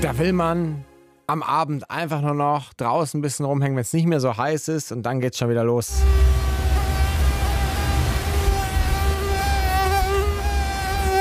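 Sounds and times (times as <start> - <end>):
speech: 0.0 - 6.3
low rumble: 5.9 - 11.2
mosquito whining while hovering: 5.9 - 11.2.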